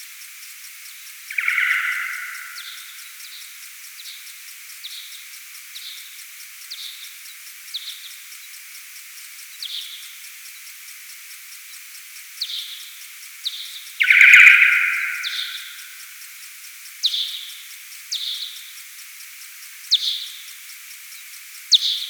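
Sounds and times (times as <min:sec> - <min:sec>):
P kuhlii FM signal: 0:01.1 - 0:06.0, 0:12.4 - 0:16.3, 0:17.0 - 0:18.7, 0:19.9 - 0:20.6, 0:21.7 - 0:22.0.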